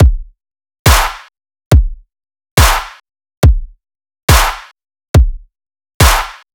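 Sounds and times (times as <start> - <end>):
dubstep kick drum loop: 0.0 - 6.4
dubstep clap loop: 0.9 - 1.3, 2.6 - 3.0, 4.3 - 4.8, 6.0 - 6.5.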